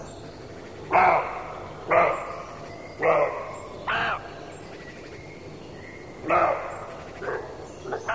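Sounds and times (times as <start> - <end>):
low background hiss: 0.0 - 8.1
male roe deer buck barking: 0.8 - 4.4, 6.1 - 8.1.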